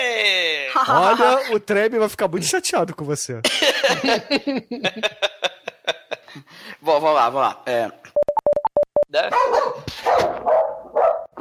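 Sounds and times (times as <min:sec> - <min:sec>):
speech: 0:00.8 - 0:08.1, 0:09.1 - 0:10.6
laughter: 0:03.4 - 0:06.5
short electronic beeps: 0:08.2 - 0:09.1
dog barking loudly: 0:09.3 - 0:11.3.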